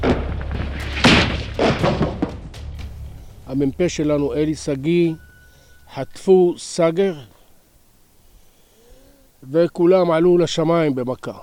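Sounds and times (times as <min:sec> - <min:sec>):
heavy missile explosions: 0:00.0 - 0:02.5
speech: 0:03.5 - 0:05.3, 0:05.9 - 0:07.3, 0:09.4 - 0:11.4.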